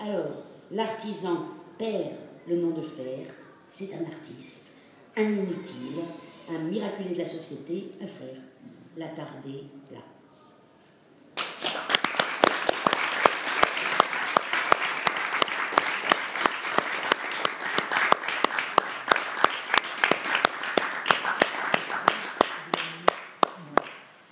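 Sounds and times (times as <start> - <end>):
speech: 0.1 - 10.1
audience applauding: 11.4 - 24.0.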